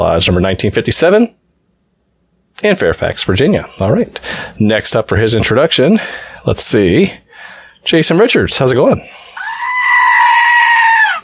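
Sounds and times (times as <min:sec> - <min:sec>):
speech: 0:00.0 - 0:01.4, 0:02.6 - 0:09.3
screaming goat toy bleating scream: 0:09.4 - 0:11.2.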